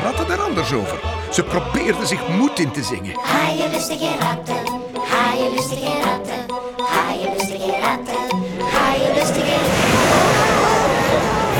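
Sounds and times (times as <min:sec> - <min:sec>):
faint indistinct voices: 0:00.0 - 0:11.5
speech: 0:00.3 - 0:10.2
heavy storm waves crashing over a ship's deck: 0:08.6 - 0:11.5.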